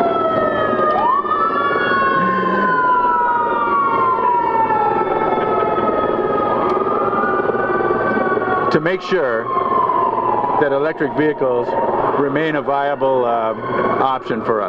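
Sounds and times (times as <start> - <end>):
fire engine siren wailing: 0.0 - 14.6
speech: 8.7 - 9.6, 10.6 - 14.6.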